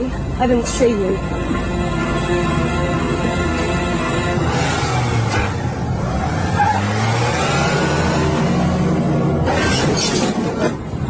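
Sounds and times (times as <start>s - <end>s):
speech: 0.1s - 1.7s
car engine revving while the car is being parked: 0.6s - 11.0s.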